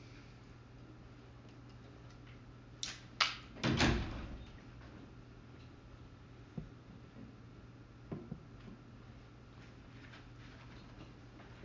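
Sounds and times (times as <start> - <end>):
low steady hum: 0.0 - 11.6
door shutting with a solid thud: 3.6 - 4.5.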